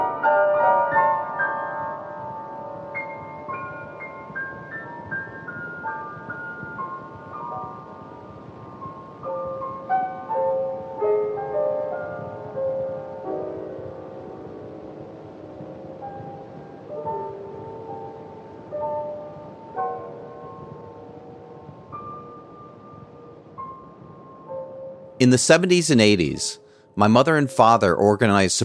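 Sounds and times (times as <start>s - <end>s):
woman improvising on solo piano on an old audio tape recording: 0.0s - 25.2s
speech: 25.2s - 28.6s.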